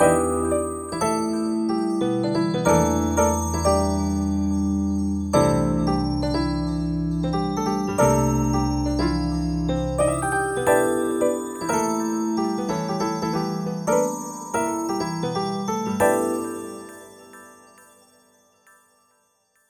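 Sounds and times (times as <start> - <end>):
piano bells: 0.0 - 19.6.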